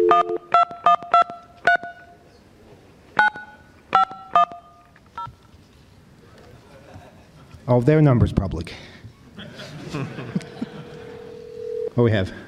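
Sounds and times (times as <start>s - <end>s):
telephone keypad tones as a number is dialed by hand: 0.0s - 2.0s, 3.2s - 4.6s
laughter: 6.4s - 7.7s, 9.2s - 11.3s
speech: 7.7s - 9.0s, 12.0s - 12.4s.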